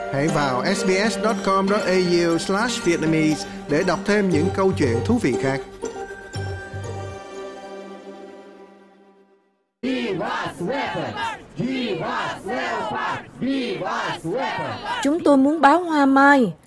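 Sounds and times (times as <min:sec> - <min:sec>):
bright chiming jingle: 0:00.0 - 0:09.0
speech: 0:00.1 - 0:05.8, 0:13.4 - 0:16.6
large crowd of protesters chanting outside the European Union building in Brussels Belgium: 0:09.8 - 0:15.3.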